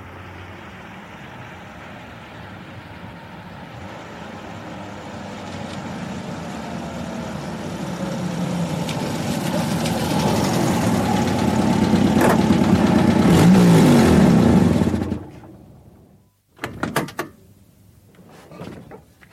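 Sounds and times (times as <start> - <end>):
car engine rumbling and revving as the car pulls away: 4.8 - 15.4.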